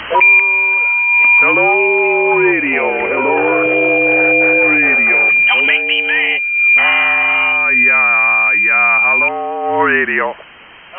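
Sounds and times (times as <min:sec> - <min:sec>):
SSB radio tuning tone: 0:00.1 - 0:10.1.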